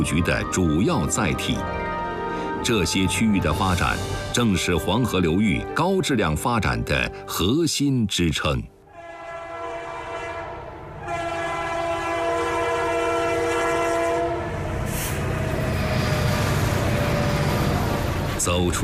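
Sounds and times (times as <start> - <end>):
speech: 0.0 - 1.9, 2.6 - 8.8, 18.5 - 18.8
high-speed electric train horn blast: 8.9 - 18.2
high-speed electric train passing with roar of wheels and wind: 10.5 - 18.8.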